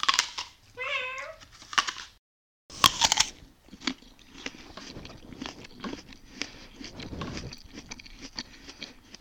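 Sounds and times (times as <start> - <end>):
crunchy chewing and small crackling bites: 0.0 - 0.8, 1.4 - 9.1
cat meowing: 0.8 - 1.4.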